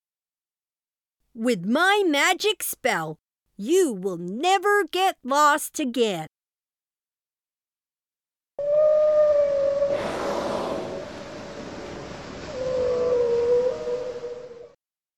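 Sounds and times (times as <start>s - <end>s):
speech: 1.4s - 6.3s
whale moaning calls: 8.6s - 14.8s.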